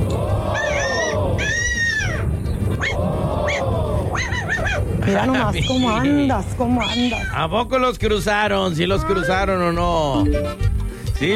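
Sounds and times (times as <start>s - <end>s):
rooster crowing: 0.0s - 4.9s
rumbling noise: 0.0s - 11.3s
speech: 5.1s - 11.3s.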